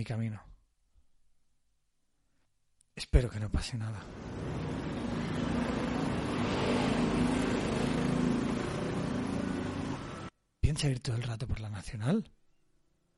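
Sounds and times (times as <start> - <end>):
speech: 0.0 - 0.5, 3.0 - 4.6, 10.7 - 12.4
dusty double-trailer truck rushing past on a highway in Thailand: 4.0 - 10.3
heavy road traffic roar on a highway in Thailand: 4.0 - 10.3.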